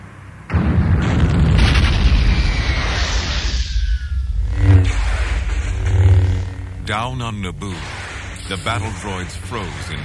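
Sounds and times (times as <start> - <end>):
huge starship cruiser exploding: 0.5 - 6.9
speech: 6.9 - 10.0.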